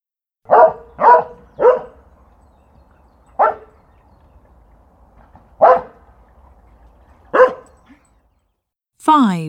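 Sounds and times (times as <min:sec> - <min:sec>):
dog barking: 0:00.5 - 0:02.0, 0:03.4 - 0:03.7, 0:05.6 - 0:06.0, 0:07.3 - 0:07.8
speech: 0:09.1 - 0:09.4.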